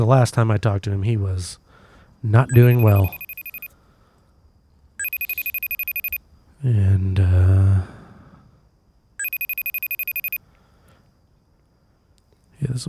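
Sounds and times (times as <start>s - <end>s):
speech: 0.0s - 1.6s, 2.2s - 3.2s, 6.6s - 7.9s, 12.6s - 12.8s
telephone ringing through a phone line on an outgoing call: 2.5s - 3.7s, 5.0s - 6.2s, 9.2s - 10.4s.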